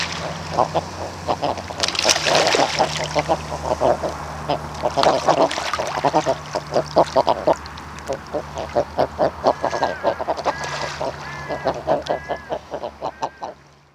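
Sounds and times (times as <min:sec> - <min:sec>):
common eider Somateria mollissima clucking: 0:00.4 - 0:13.6
speech: 0:00.5 - 0:01.6, 0:03.0 - 0:04.7
common eider Somateria mollissima cooing calls: 0:02.5 - 0:13.6.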